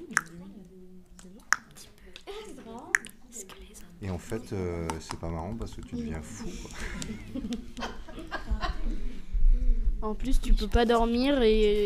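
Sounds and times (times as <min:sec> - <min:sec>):
voice imitating water drops dripping: 0:00.0 - 0:00.4, 0:01.4 - 0:01.8, 0:02.8 - 0:03.2
speech: 0:04.0 - 0:07.9, 0:10.0 - 0:11.8
laughter: 0:06.4 - 0:09.2.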